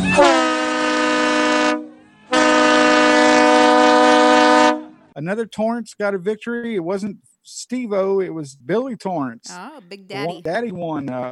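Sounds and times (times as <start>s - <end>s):
train horn blasts: 0.0s - 5.0s
speech: 5.2s - 11.3s.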